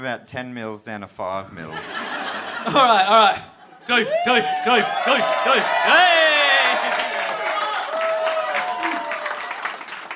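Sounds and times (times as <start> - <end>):
speech: 0.0 - 6.4
laughter: 1.6 - 7.6
crowd applauding for a man finishing a drink: 3.9 - 10.1.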